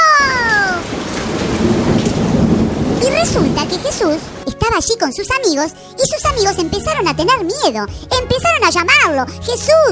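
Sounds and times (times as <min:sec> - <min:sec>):
rushing rumbling wash beneath storm rain: 0:00.0 - 0:05.1
steady loud rain pouring in a storm: 0:00.0 - 0:06.0
speech: 0:03.2 - 0:09.9.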